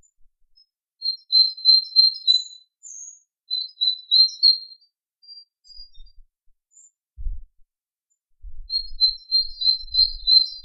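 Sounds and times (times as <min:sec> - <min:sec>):
native hedgerow songbird twittering: 0:00.0 - 0:06.2, 0:08.7 - 0:10.6.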